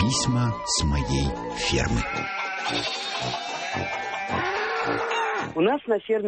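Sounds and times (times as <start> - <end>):
rural background: 0.0 - 5.6
speech: 0.1 - 6.2
young goats bleating: 1.5 - 5.5.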